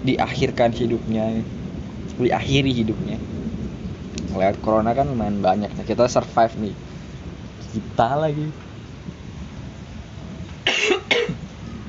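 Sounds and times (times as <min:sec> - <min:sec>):
speech: 0:00.0 - 0:01.6, 0:02.2 - 0:03.4, 0:04.3 - 0:06.8, 0:07.6 - 0:08.6
faint hiss: 0:00.0 - 0:11.8
harsh coughs: 0:10.6 - 0:11.4.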